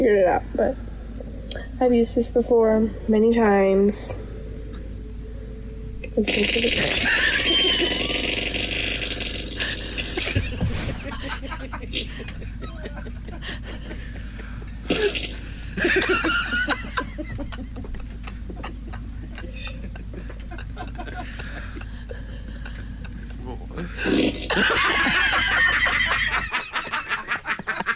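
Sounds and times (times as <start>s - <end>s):
steady low hum: 0.0s - 27.9s
speech: 0.1s - 0.9s, 1.5s - 4.2s, 6.2s - 7.3s
fart noises from a prank video played back on a phone: 6.2s - 11.4s, 14.9s - 15.6s, 24.0s - 24.7s
laughter: 6.8s - 8.3s, 9.6s - 14.8s, 15.7s - 23.6s, 24.5s - 27.9s.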